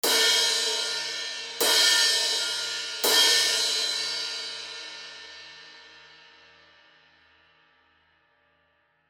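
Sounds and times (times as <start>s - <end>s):
Zildjian heavy crash cymbal hits: 0.0s - 5.5s.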